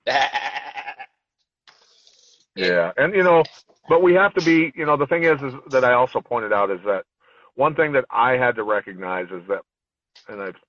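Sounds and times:
sheep bleating: 0.0s - 1.2s
speech: 0.1s - 0.5s, 2.6s - 9.7s, 10.3s - 10.6s.

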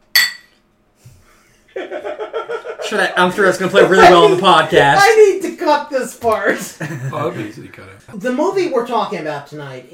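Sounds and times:
glasses clinking in a toast: 0.0s - 0.6s
laughter: 1.4s - 5.0s, 6.5s - 7.9s
speech: 1.8s - 9.9s.

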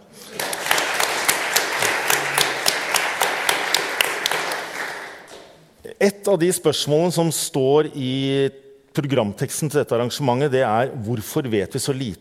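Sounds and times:
audience applause: 0.0s - 5.5s
speech: 6.0s - 12.1s.

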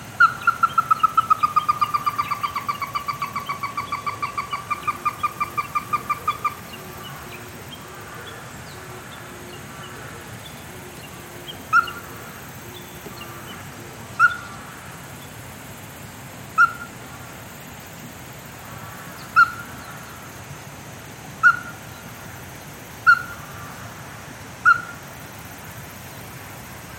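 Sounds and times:
Ruddy-breasted Crake calling: 0.0s - 15.4s, 16.5s - 17.3s, 18.6s - 20.3s, 21.3s - 22.3s, 22.9s - 25.1s
steady hiss: 0.0s - 26.9s.

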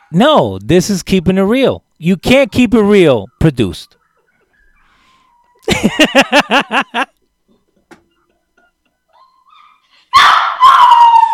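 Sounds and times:
speech: 0.1s - 4.0s, 5.6s - 7.2s
laughter: 5.6s - 7.2s
dog in a hallway whining with short high yelps: 9.1s - 11.3s.

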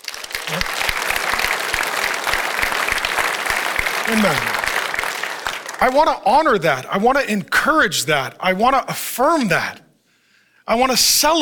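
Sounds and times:
large audience of men applauding in a church: 0.0s - 6.2s
speech: 4.1s - 4.6s, 5.8s - 9.8s, 10.7s - 11.4s.

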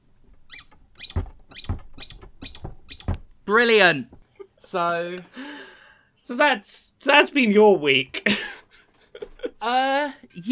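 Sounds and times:
squeaky rubber toy nose being squeezed: 0.5s - 3.2s
speech: 3.5s - 5.4s, 6.3s - 8.5s, 9.6s - 10.5s.

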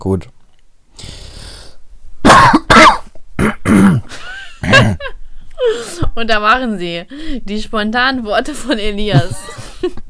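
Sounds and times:
speech: 0.0s - 0.4s, 6.2s - 10.0s
harsh phlegmy coughs: 2.2s - 5.0s.

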